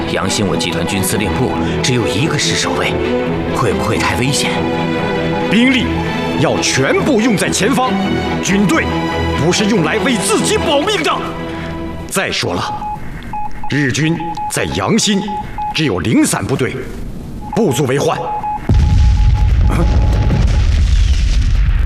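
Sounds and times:
men talking: 0.0 - 13.0, 13.6 - 18.5
howitzer and field gun shell explosions: 18.6 - 21.8.

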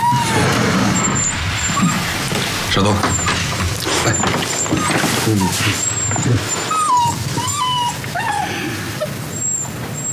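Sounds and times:
dog whimpering and yipping: 0.0 - 0.3, 3.1 - 10.1
steady low hum: 0.0 - 10.1
speech: 2.8 - 3.2, 5.3 - 6.8.

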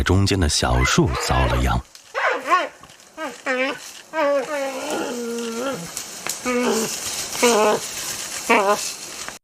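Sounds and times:
speech: 0.0 - 2.0, 2.6 - 9.0
two giant pandas roaring and bleating while fighting: 0.7 - 8.9
rustling and scuffling of fighting pandas: 0.9 - 9.4.

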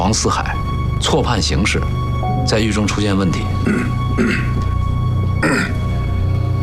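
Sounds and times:
speech: 0.0 - 4.7, 5.4 - 5.8
person coughing: 3.6 - 4.6, 5.4 - 5.8.

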